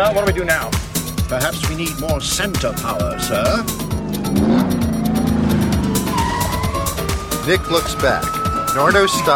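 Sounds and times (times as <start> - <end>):
speech: 0.0 - 4.4, 7.4 - 9.3
car engine winding down: 0.8 - 7.6
thin tire squeal of a braking car: 4.2 - 9.3.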